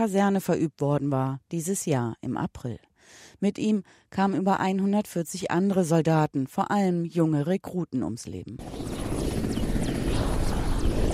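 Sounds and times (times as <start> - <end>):
speech: 0.0 - 9.0
military helicopter flying soldiers into a camp in Afghanistan: 8.6 - 11.1.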